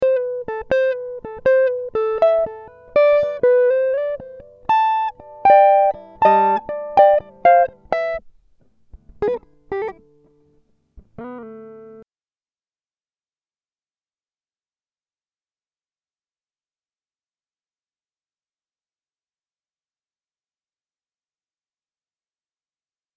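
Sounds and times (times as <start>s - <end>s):
guitar improvisation: 0.0s - 12.0s.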